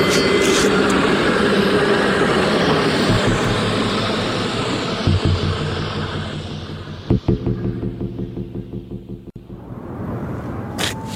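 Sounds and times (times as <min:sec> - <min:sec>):
tram rumbling past: 0:00.0 - 0:11.1.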